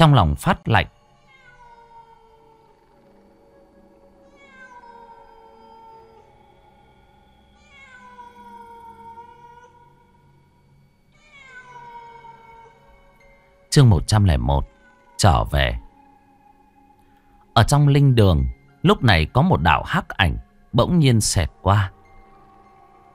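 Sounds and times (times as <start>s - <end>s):
speech: 0.0s - 1.0s, 13.8s - 15.8s, 17.6s - 22.0s
cats yowling mournfully: 1.0s - 13.7s, 14.3s - 16.9s.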